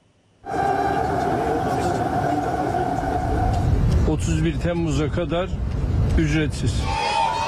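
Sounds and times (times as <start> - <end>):
sustained mechanical whine of metro train: 0.4 - 4.1
metro train on the Halkalı–Istanbul Airport line in Istanbul Turkey rumbling: 0.4 - 7.4
speech: 4.1 - 7.0.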